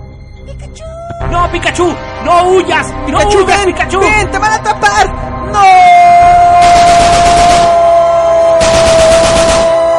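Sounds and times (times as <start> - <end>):
speech: 0.5 - 6.9
rapid automatic gunfire in a comedic staged scene: 6.6 - 7.9, 8.6 - 9.8.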